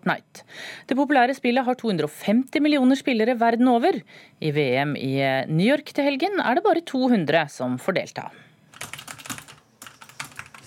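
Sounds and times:
speech: 0.0 - 8.5
fast typing on a computer keyboard: 8.7 - 10.6.

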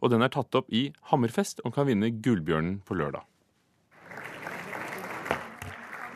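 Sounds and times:
speech: 0.0 - 3.3
audience applause at a press conference: 3.9 - 6.1.

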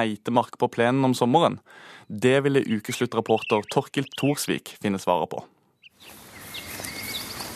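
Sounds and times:
speech: 0.0 - 6.2
faint bird chirps and thin whistled notes in late summer forest: 3.3 - 4.4, 5.8 - 7.5
steady outdoor hiss of late summer forest ambience at Nesodden: 6.0 - 7.5.

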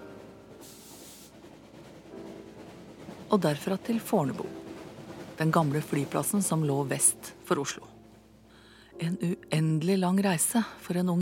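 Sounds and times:
train rumbling on rails on a cold winter day in Norway: 0.0 - 8.5
short sharp air release hiss: 0.6 - 1.4
speech: 3.3 - 4.6, 5.4 - 7.9, 9.0 - 11.2.

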